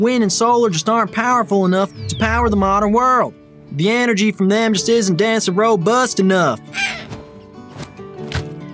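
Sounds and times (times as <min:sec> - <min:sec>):
speech: 0:00.0 - 0:07.1
bird squawking as it is struck by a windmill: 0:06.7 - 0:07.2.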